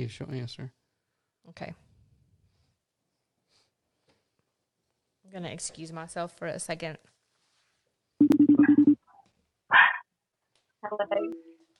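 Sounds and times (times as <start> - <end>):
speech: 0.0 - 0.8, 1.5 - 1.9, 5.3 - 7.1, 10.8 - 11.5
dog barking: 9.7 - 10.0.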